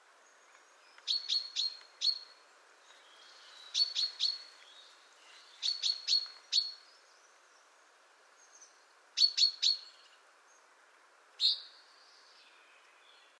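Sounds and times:
quiet background hiss: 0.0s - 13.3s
Chaffinch Fringilla coelebs giving short sharp high chips: 0.2s - 7.1s, 8.4s - 10.6s, 11.4s - 11.9s.

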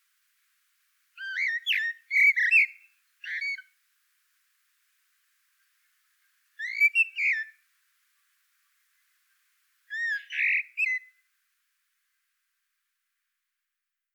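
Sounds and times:
common blackbird Turdus merula soft fluted phrases with high squeaks: 1.2s - 3.7s, 6.6s - 7.6s, 9.9s - 11.2s.

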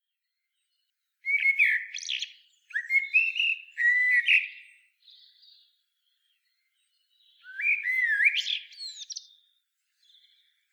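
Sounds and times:
common blackbird Turdus merula song with fluting whistles: 1.3s - 4.8s, 7.3s - 9.3s.

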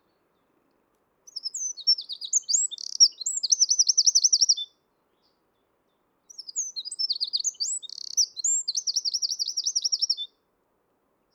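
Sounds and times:
Eurasian wren song phrase: 1.3s - 5.4s, 6.3s - 10.3s.

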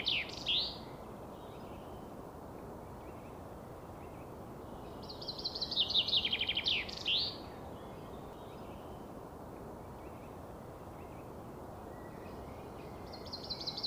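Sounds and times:
common chaffinch Fringilla coelebs singing a descending rattling trill: 0.0s - 2.0s, 4.8s - 8.9s, 11.9s - 13.8s
low constant noise: 0.0s - 13.8s.

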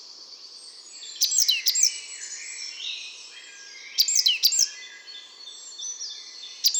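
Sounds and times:
busy chorus of other birds: 0.0s - 6.7s.

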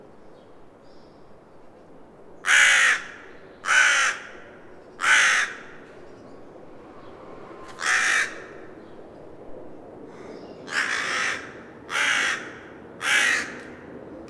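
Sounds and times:
Carrion Crow Corvus corone cawing: 2.4s - 5.8s, 7.8s - 8.7s, 10.1s - 13.9s.

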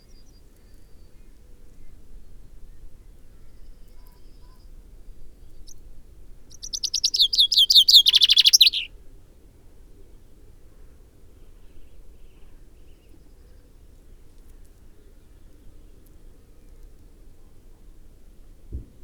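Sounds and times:
Common Chaffinch Fringilla coelebs song: 6.5s - 8.9s.

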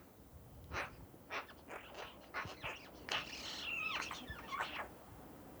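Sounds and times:
steady low background hiss: 0.2s - 5.5s
Eurasian magpie Pica pica giving harsh rasping calls: 0.7s - 5.0s.

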